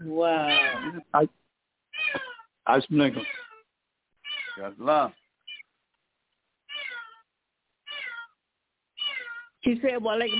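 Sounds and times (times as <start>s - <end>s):
cat meowing: 0.4s - 1.2s, 2.0s - 2.4s, 3.1s - 3.6s, 4.3s - 4.8s, 6.7s - 7.2s, 7.9s - 8.3s, 9.0s - 9.5s
speech: 1.2s - 1.4s, 2.7s - 3.4s, 4.7s - 5.2s, 9.7s - 10.3s.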